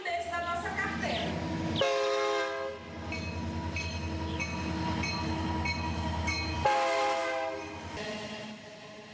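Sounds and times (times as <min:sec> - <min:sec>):
train rumbling heavily past: 0:00.1 - 0:09.1
loud blaring train horn blasts: 0:01.8 - 0:03.0, 0:06.4 - 0:08.7.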